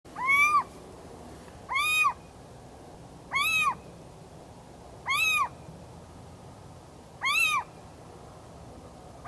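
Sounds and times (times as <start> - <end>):
little owl territorial call: 0.1 - 0.7, 1.7 - 2.3, 3.3 - 3.9, 5.0 - 5.6, 7.2 - 7.8.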